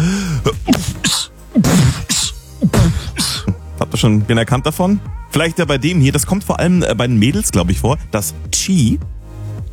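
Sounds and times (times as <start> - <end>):
beatbox-style sneezes: 0.0 - 3.7
speech: 4.0 - 9.7.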